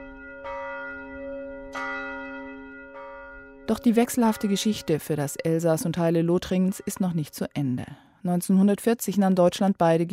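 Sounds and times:
church bell tolling in a tower: 0:00.0 - 0:07.4
speech: 0:03.7 - 0:10.1.

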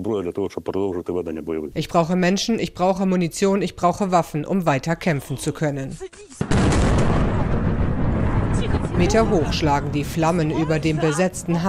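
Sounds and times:
speech: 0:00.0 - 0:07.2, 0:09.0 - 0:11.6
heavy explosions during a military strike at a seaport: 0:06.4 - 0:11.6.

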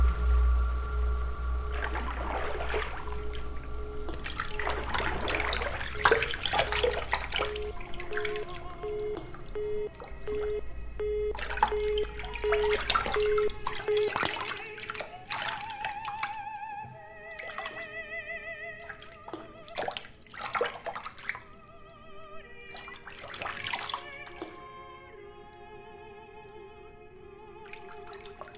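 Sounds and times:
warm water splashing and sloshing in a filled bathtub: 0:00.0 - 0:26.8, 0:27.4 - 0:28.5
humming and whistling tones: 0:00.0 - 0:28.5.

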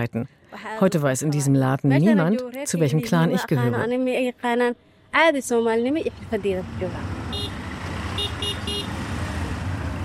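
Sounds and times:
speech: 0:00.0 - 0:07.2
steady engine rumble of busy street traffic with three-wheelers and trucks: 0:02.6 - 0:10.0
faint short honks: 0:07.3 - 0:09.0
loud horn toots: 0:07.3 - 0:09.0.

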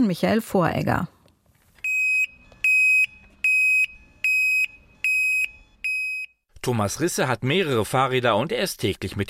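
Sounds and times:
speech: 0:00.0 - 0:01.1, 0:06.6 - 0:09.2
bicycle alarm blaring in piercing electronic beeps: 0:01.8 - 0:06.4.

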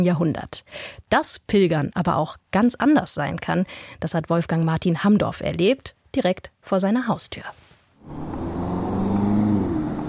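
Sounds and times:
speech: 0:00.0 - 0:08.7
traffic of car engines on a busy city square in Berlin: 0:08.0 - 0:10.0.

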